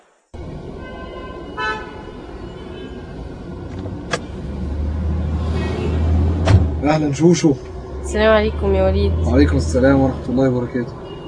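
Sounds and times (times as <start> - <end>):
steady vehicle hum: 0.4 - 11.2
car horn toot on arrival at a main gate: 0.8 - 3.0, 5.4 - 6.2, 11.0 - 11.2
speech: 6.9 - 11.0.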